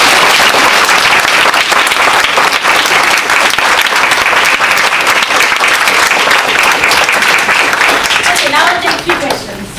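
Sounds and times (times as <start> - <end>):
large audience applauding: 0.0 - 9.4.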